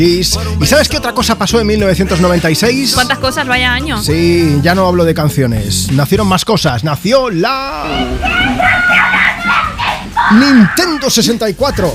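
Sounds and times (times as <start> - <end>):
speech: 0.0 - 11.9
child screaming excitedly while opening a Nintendo 64 Christmas present: 7.7 - 11.9.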